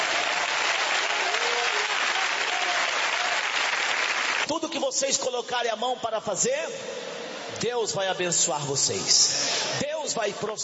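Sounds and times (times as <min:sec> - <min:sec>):
audience applause: 0:00.0 - 0:04.5
speech: 0:04.5 - 0:10.6.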